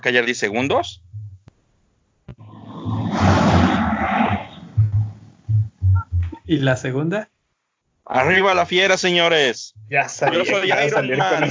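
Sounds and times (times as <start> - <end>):
speech: 0.0 - 1.1, 6.5 - 7.3, 8.1 - 11.4
low thumping bursts: 0.7 - 1.5, 2.4 - 6.8, 9.7 - 10.3
sea wave roaring: 2.5 - 5.4
laughter: 9.9 - 11.4.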